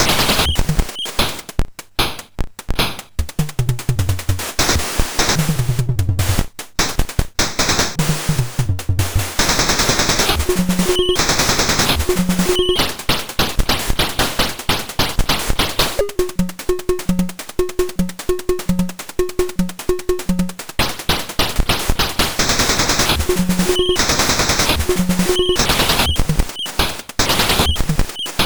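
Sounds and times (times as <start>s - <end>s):
drum action sounds on MOS6581R4 SID chip: 0.0s - 28.4s.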